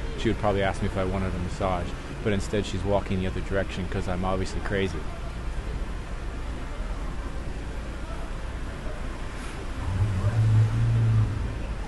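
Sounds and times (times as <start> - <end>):
street traffic rumbling: 0.0 - 11.8
speech: 0.2 - 5.2
car engine passing by: 9.3 - 11.8.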